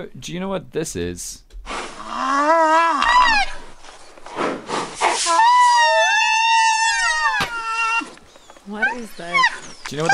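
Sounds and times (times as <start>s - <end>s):
speech: 0.0s - 1.5s, 8.7s - 10.1s
baby rhino squealing: 2.0s - 3.8s, 5.0s - 10.1s.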